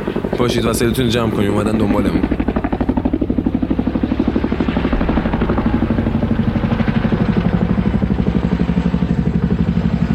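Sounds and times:
helicopter rotor thumping in a rapid chop: 0.0 - 10.1
speech: 0.4 - 2.4
heavy helicopter engine drone: 3.3 - 10.1.

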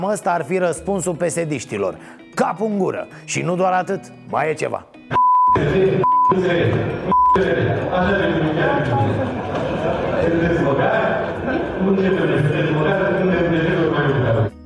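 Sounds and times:
speech: 0.0 - 5.0, 5.6 - 14.4
censor bleeps: 5.1 - 6.4, 7.1 - 7.5
laughter: 5.6 - 14.0.

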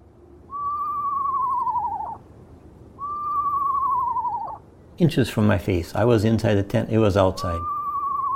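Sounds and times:
Eastern Screech Owl giving a whistled tremolo trill: 0.5 - 2.2, 3.0 - 4.6, 7.4 - 8.3
speech: 5.0 - 7.8.

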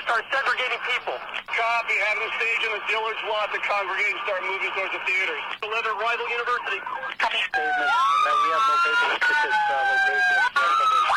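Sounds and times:
person talking over an emergency radio channel: 0.0 - 11.1
speech: 0.2 - 11.1
responding unit's wailing emergency siren over a compressed Denver emergency radio channel: 7.5 - 11.1.

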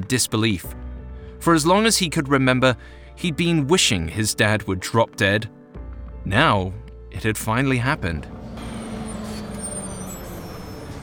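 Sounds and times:
speech: 0.1 - 0.8, 1.4 - 5.6, 6.2 - 8.7
large Greyhound bus engine drone: 7.8 - 11.0
large Greyhound bus brakes squealing to a stop: 8.4 - 11.0.

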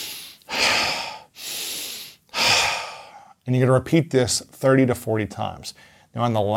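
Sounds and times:
person breathing deeply during a guided relaxation breathing exercise: 0.0 - 3.4
speech: 3.5 - 6.5.

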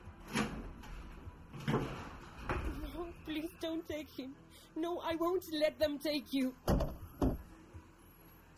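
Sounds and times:
apartment door in Buenos Aires opening and closing: 0.2 - 3.1
speech: 3.2 - 6.9.

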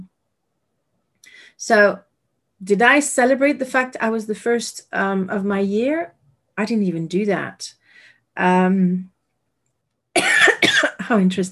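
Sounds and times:
speech: 1.5 - 7.8, 8.4 - 9.1, 11.1 - 11.5
person coughing: 10.2 - 11.1.

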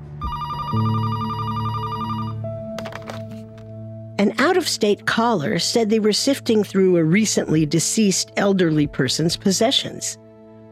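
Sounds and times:
telephone ringing with electronic warbling tone: 0.2 - 3.3
speech: 0.7 - 1.0, 4.2 - 10.2.

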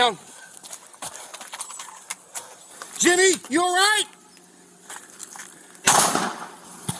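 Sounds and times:
speech: 0.0 - 0.3, 3.0 - 4.2
low hum: 0.0 - 6.9
gunshot during a police shooting incident: 5.8 - 6.6.

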